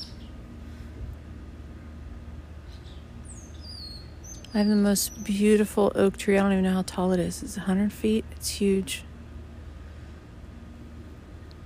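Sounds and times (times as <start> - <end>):
steady low outdoor rumble: 0.0 - 11.6
faint bird chirps in suburban yard: 2.6 - 5.4
speech: 4.5 - 9.1.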